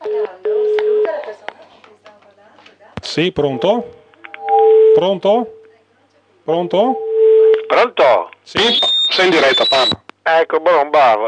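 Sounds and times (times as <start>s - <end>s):
telephone line tone of an incoming call to a live radio broadcast: 0.0s - 1.2s, 3.5s - 5.7s, 6.9s - 7.7s
speech: 3.1s - 4.0s, 5.0s - 5.6s, 6.4s - 7.0s, 7.7s - 11.2s.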